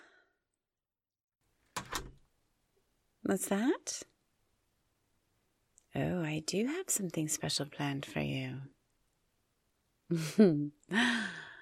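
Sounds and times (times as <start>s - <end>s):
door swinging shut with a thud: 1.8s - 2.2s
speech: 3.3s - 4.1s, 6.0s - 8.7s, 10.1s - 11.4s.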